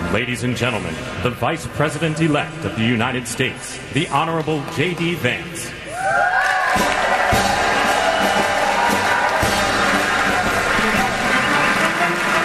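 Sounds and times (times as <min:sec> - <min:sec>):
speech: 0:00.1 - 0:06.3
large standing-room-only crowd clapping: 0:04.2 - 0:12.4
large crowd cheering with whoops and shouts: 0:05.9 - 0:12.4.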